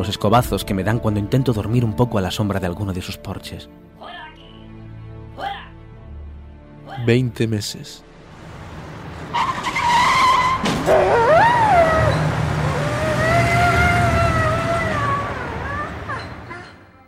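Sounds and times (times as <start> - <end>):
speech: 0.0 - 4.2, 7.0 - 8.1, 10.9 - 11.2
car tires screeching in a long loud skid on a street: 9.2 - 16.5
sharp thump of a car hitting a dog crossing the street: 10.6 - 11.2
injured dog yelping and whimpering: 10.9 - 16.9.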